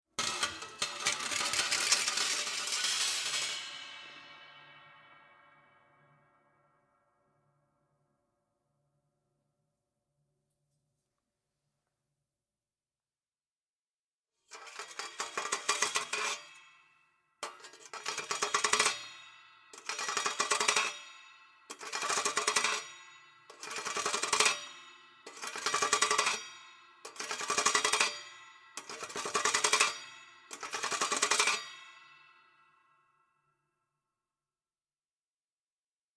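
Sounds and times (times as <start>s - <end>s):
carbon steel cheese grater scraping with reverb: 0.2s - 3.4s, 14.5s - 16.6s, 17.4s - 19.1s, 19.8s - 21.1s, 21.7s - 22.8s, 23.4s - 31.8s.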